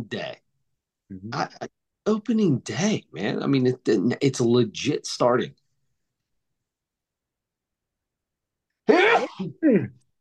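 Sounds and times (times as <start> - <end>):
speech: 0.0 - 0.4, 1.1 - 5.6, 8.9 - 10.0
person sneezing: 8.9 - 9.9.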